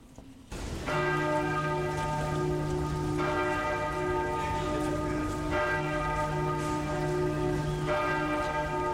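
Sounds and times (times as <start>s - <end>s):
hissing wash like rain: 0.5s - 7.5s
large bell ringing: 0.5s - 8.9s.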